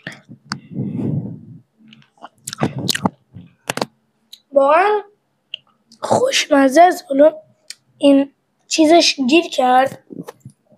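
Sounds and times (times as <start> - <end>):
chewing and crunching tasty food: 2.0 - 3.2
speech: 4.6 - 5.1, 6.1 - 7.4, 8.0 - 10.0.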